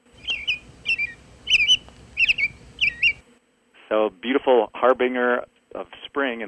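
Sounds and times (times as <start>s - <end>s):
American robin singing: 0.0s - 3.2s
speech: 3.9s - 6.4s.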